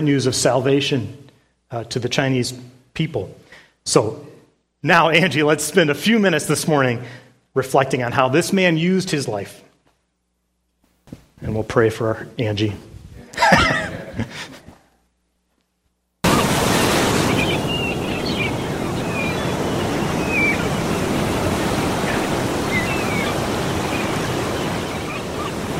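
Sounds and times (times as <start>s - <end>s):
speech: 0.0s - 9.7s, 11.4s - 14.6s
laughter: 13.2s - 14.7s
ocean surf on the beach at Brighton by an old pier: 16.2s - 25.7s
seagulls calling over the beach at Brighton: 16.2s - 25.7s.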